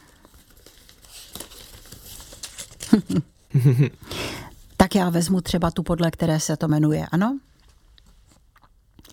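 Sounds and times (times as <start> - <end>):
papers rustling and crinkling: 0.0 - 3.5
laughter: 3.0 - 4.0
speech: 3.0 - 4.2, 4.9 - 7.5.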